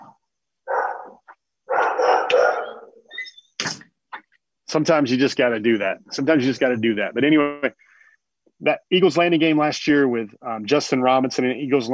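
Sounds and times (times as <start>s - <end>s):
dog barking: 0.6s - 3.1s
speech: 4.7s - 7.9s, 8.6s - 11.9s.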